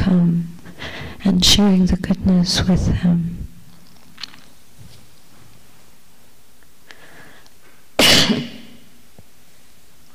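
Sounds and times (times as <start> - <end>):
speech: 0.1 - 0.5, 1.3 - 3.4
person coughing off-mic: 8.0 - 8.8.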